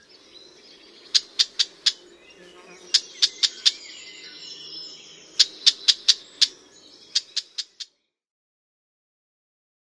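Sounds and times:
red-backed shrike clicking calls: 1.2 - 2.0, 2.9 - 3.8, 5.4 - 6.5, 7.1 - 7.9.

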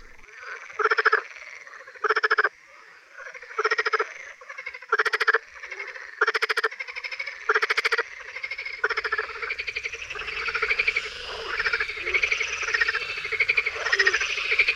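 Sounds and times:
marsh frog croaking: 0.0 - 14.7
low rumble: 8.1 - 14.7.

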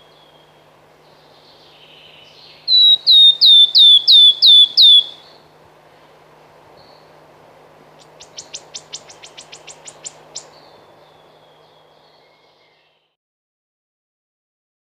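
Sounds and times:
wood warbler song of descending whistles: 2.7 - 5.2.

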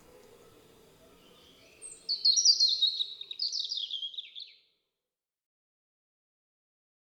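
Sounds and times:
European robin singing: 0.0 - 4.6.

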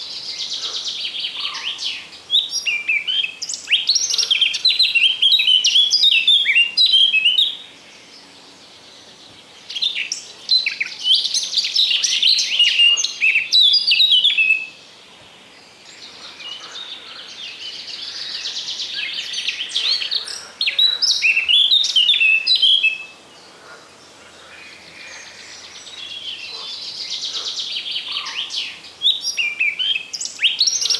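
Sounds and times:
Eurasian blackcap singing fast warbling song phrases: 0.0 - 7.7, 9.7 - 14.8, 17.5 - 23.2, 25.6 - 30.9.

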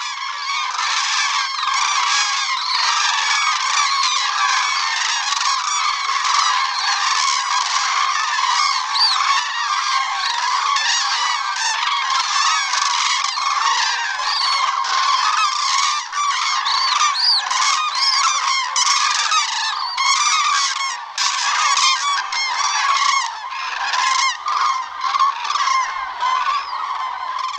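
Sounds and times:
common crane flock calling with adults bugling: 0.0 - 27.5
thin high whistles of juvenile common cranes: 2.3 - 4.9, 8.5 - 9.4, 13.9 - 18.4, 19.4 - 20.1.

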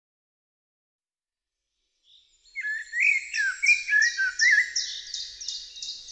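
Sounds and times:
common blackbird singing: 2.1 - 6.0.

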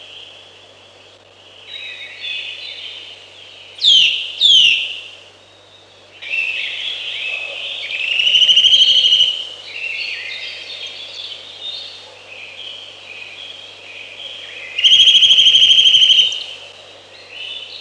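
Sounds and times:
other birds singing: 3.6 - 5.1, 6.2 - 17.7
Eurasian nuthatch sharp call notes and rattling trill: 3.8 - 5.1, 7.9 - 9.5, 14.7 - 16.6.

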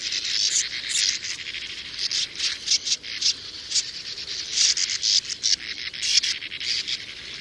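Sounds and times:
sand martins chattering: 0.0 - 7.3.

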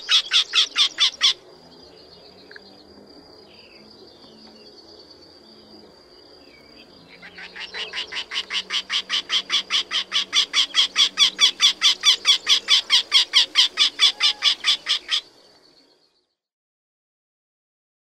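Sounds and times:
Eurasian wryneck calling: 0.0 - 1.5, 7.1 - 15.4.

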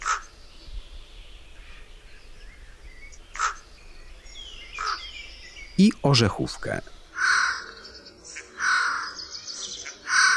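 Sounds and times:
Eurasian jay mimicking common raven croaking calls: 0.0 - 0.4, 3.1 - 3.8, 4.4 - 10.3
faint birdsong: 0.0 - 10.3
speech: 5.8 - 7.0.

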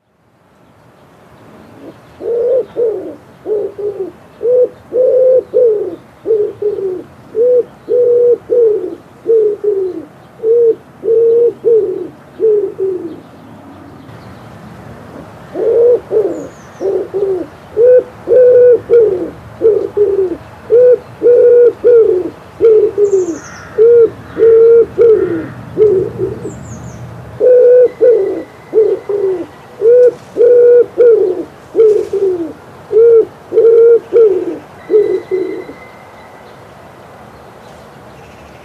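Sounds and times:
wood pigeon: 1.8 - 13.2, 15.6 - 26.6, 27.4 - 35.8.

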